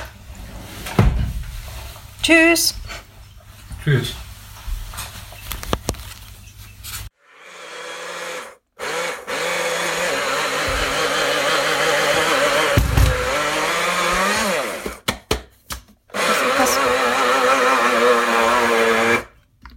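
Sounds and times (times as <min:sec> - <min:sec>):
speech: 0:02.3 - 0:03.0, 0:03.9 - 0:04.2
smoothie blender whirring: 0:07.2 - 0:15.0, 0:16.1 - 0:19.4.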